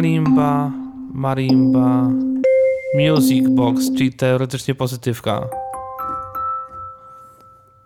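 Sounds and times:
speech: 0.0 - 2.3, 2.9 - 5.6
small electronic gong tone on old Casio keyboard: 0.0 - 4.2.

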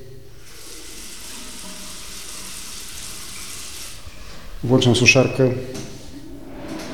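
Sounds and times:
water running from a bathroom tap: 0.4 - 4.2
speech: 4.6 - 5.9.

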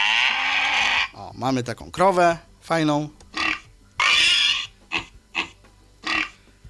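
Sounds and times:
recorded pig oinking played through a low-quality doorbell speaker: 0.0 - 1.2, 3.3 - 6.4
speech: 1.4 - 3.2.

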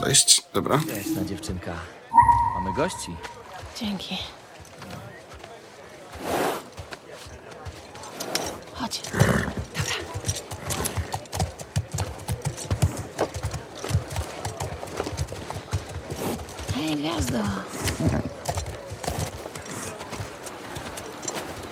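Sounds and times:
speech: 0.0 - 4.4, 8.9 - 9.6, 17.0 - 18.3
horse hooves clip-clopping in a video game: 4.4 - 21.7.

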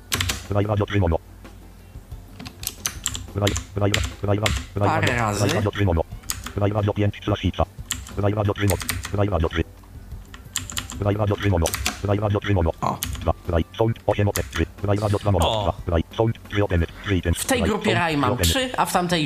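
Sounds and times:
computer keyboard shortcut keys clicking: 0.0 - 1.1, 2.4 - 4.8, 5.4 - 6.7, 7.8 - 9.6, 10.2 - 13.4, 14.0 - 15.5
speech: 0.5 - 1.4, 3.4 - 6.0, 6.6 - 9.6, 11.0 - 19.2.

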